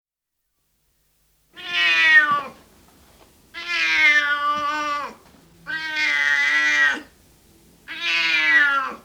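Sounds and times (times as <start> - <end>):
tomcat giving long loud meows: 1.6 - 2.6, 3.6 - 7.2, 7.9 - 9.0.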